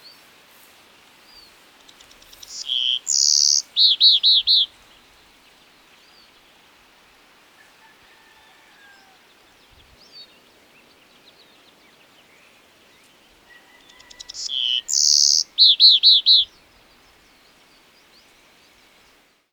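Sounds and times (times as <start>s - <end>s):
black-crested warbler Myiothlypis nigrocristata singing: 1.3s - 5.1s, 9.8s - 18.9s.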